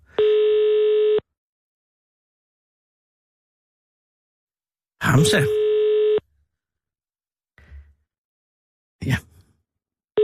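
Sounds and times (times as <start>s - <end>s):
telephone ringing tone on an outgoing call: 0.1s - 1.2s, 5.0s - 6.2s
speech: 5.2s - 5.6s.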